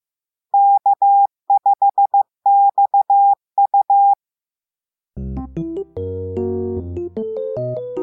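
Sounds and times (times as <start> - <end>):
amateur radio call sign in Morse code beeps: 0.6 - 4.2
music: 5.2 - 8.0.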